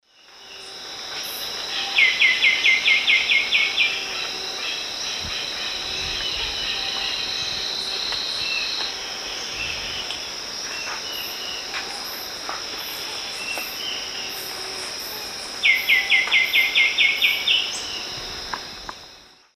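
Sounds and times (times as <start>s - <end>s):
Pachyramphus polychopterus song in South American Eastern Lowlands: 1.7s - 12.1s, 13.0s - 18.2s.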